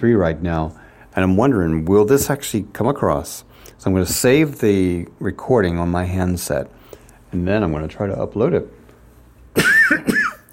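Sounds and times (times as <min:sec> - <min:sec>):
speech: 0:00.0 - 0:08.8, 0:09.6 - 0:10.2
person coughing: 0:09.6 - 0:10.5.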